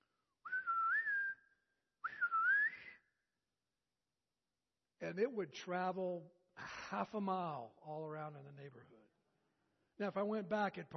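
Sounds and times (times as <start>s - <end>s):
sharp two-finger whistle imitating a mother calling children home for dinner: 0.4s - 3.2s
speech: 5.0s - 9.1s, 10.0s - 10.9s.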